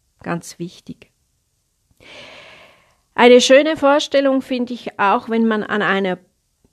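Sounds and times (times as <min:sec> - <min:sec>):
speech: 0:00.2 - 0:01.1, 0:03.2 - 0:06.3
person inhaling deeply through the nose: 0:02.0 - 0:03.0.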